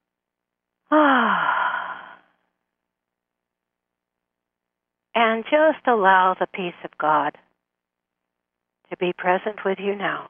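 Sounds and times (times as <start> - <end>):
speech: 0.9 - 1.4, 5.2 - 7.5, 8.9 - 10.2
deep breath let out as a voiced sigh: 0.9 - 2.4.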